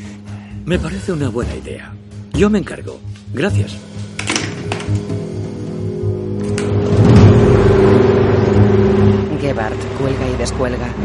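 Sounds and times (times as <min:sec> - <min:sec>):
speech: 0:00.6 - 0:04.0, 0:09.5 - 0:11.0
black car driving along a motorway toward a tunnel: 0:06.6 - 0:11.0.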